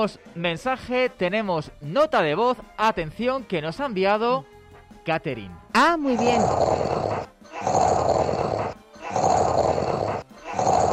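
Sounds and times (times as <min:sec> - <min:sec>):
speech: 0:00.0 - 0:07.8
man snoring loudly: 0:06.1 - 0:10.9.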